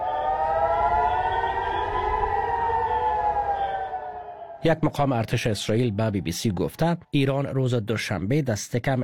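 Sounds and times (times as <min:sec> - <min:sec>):
air raid warning siren wailing: 0:00.0 - 0:06.4
speech: 0:04.6 - 0:09.0.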